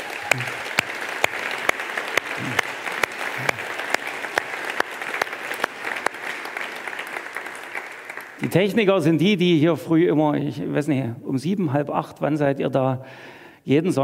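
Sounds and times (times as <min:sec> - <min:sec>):
audience applause: 0:00.0 - 0:08.8
speech: 0:08.5 - 0:14.0.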